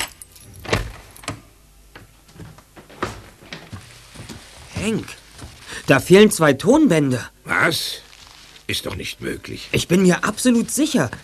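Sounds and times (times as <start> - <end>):
keys jangling and clicking as a studio door is unlocked: 0.0 - 1.4
speech: 4.8 - 5.2, 5.9 - 8.0, 8.7 - 11.2.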